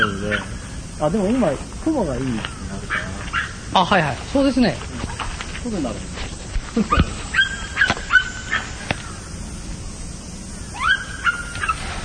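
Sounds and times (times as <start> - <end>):
quiet hiss: 0.0 - 12.0
dog barking: 0.2 - 0.5, 2.9 - 3.6, 7.3 - 8.8, 10.8 - 11.8
speech: 0.3 - 5.0, 5.6 - 6.2, 6.8 - 7.2.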